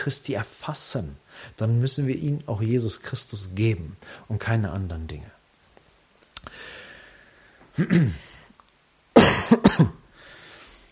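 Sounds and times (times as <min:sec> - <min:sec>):
speech: 0:00.0 - 0:05.4, 0:07.8 - 0:08.3, 0:09.3 - 0:10.0
person coughing into cupped hands: 0:07.8 - 0:08.3, 0:09.2 - 0:10.0.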